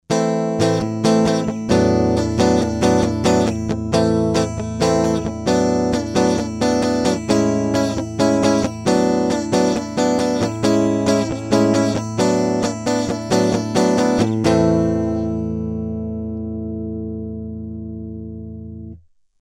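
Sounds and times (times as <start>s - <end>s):
guitar recorded through an Audient iD44 mkII: 0.0s - 19.1s.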